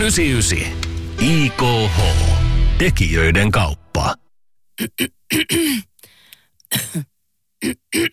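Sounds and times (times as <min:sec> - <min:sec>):
speech: 0:00.0 - 0:04.2, 0:04.8 - 0:05.9, 0:06.7 - 0:08.1
throat clearing: 0:04.8 - 0:05.9, 0:06.7 - 0:08.1
dry coughs: 0:04.8 - 0:06.0, 0:06.7 - 0:08.1.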